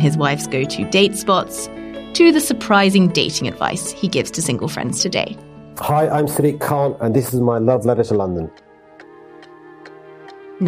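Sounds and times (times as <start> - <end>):
speech: 0.0 - 8.6
clock ticking: 7.3 - 10.6.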